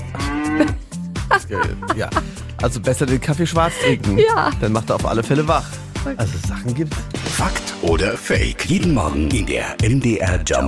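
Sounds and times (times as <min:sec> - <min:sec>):
cow mooing: 0:00.0 - 0:00.8
speech: 0:00.6 - 0:00.8, 0:01.4 - 0:10.6
laughter: 0:01.2 - 0:02.4, 0:03.6 - 0:04.6.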